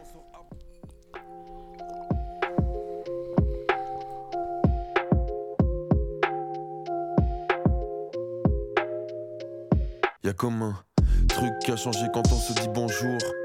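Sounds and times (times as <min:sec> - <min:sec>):
sustained layered chords in instrumental music: 0:00.0 - 0:10.1, 0:11.0 - 0:13.4
steady punchy beat in instrumental music: 0:02.1 - 0:04.0, 0:04.6 - 0:06.4, 0:07.2 - 0:08.8, 0:09.7 - 0:10.1, 0:11.0 - 0:12.8
speech: 0:10.3 - 0:13.4.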